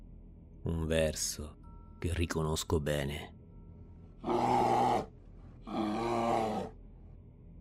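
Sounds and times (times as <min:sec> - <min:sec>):
speech: 0:00.6 - 0:03.4, 0:04.2 - 0:04.7
brown bear growling: 0:04.2 - 0:06.8.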